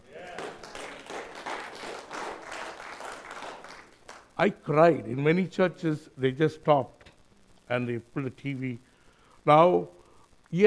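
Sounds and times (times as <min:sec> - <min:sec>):
congregation applauding: 0:00.0 - 0:04.4
speech: 0:04.4 - 0:07.0, 0:07.7 - 0:10.6.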